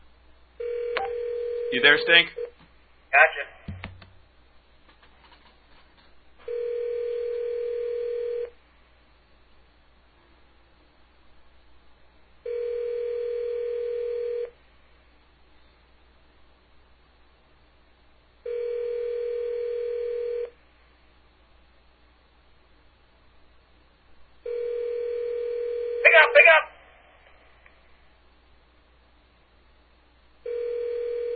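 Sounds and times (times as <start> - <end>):
telephone ringback tone on a call to a payphone: 0.6 - 1.8, 6.5 - 8.5, 12.5 - 14.5, 18.5 - 20.5, 24.5 - 26.1, 30.5 - 31.3
speech: 1.7 - 2.4, 3.1 - 3.5.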